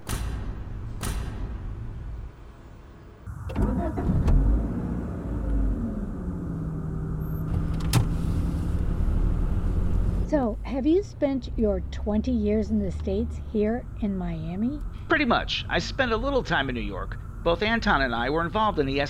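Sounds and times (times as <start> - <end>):
sharp clunk as the car starts moving: 0.0 - 1.8
car engine hum inside a car interior: 1.6 - 19.0
speech: 10.7 - 19.0.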